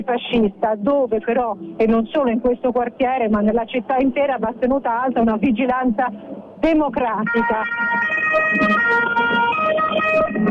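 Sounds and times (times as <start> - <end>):
speech: 0.0 - 10.4
passing police car siren wailing during a street march: 7.2 - 10.4.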